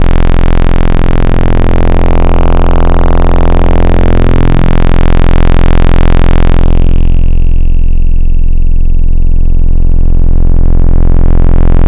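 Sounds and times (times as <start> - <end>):
series of pulses: 0.0 - 11.8.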